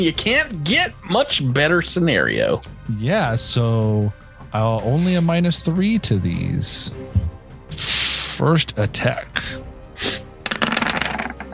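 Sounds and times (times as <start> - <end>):
speech: 0.0 - 10.2
dice rattling and tumbling across a hard tabletop: 10.4 - 11.5.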